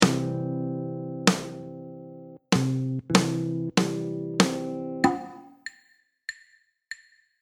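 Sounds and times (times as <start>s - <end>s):
jazz guitar rhythm: 0.0s - 5.4s.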